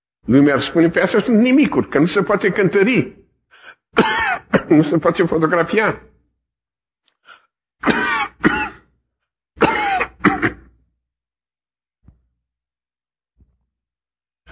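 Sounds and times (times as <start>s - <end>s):
speech: 0.2s - 3.2s, 3.9s - 6.1s
man clearing his throat while preaching: 4.0s - 4.8s, 7.8s - 8.9s, 9.6s - 10.8s
man coughing while preaching: 4.0s - 4.9s, 7.8s - 8.9s, 9.6s - 10.7s.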